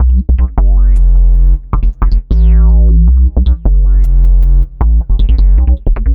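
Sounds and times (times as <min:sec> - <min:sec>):
synth bass: 0:00.0 - 0:06.1.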